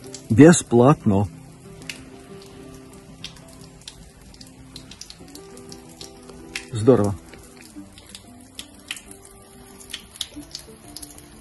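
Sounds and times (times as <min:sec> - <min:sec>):
water running from an outdoor drinking tap: 0:00.0 - 0:11.3
speech: 0:00.3 - 0:01.4, 0:06.8 - 0:07.2.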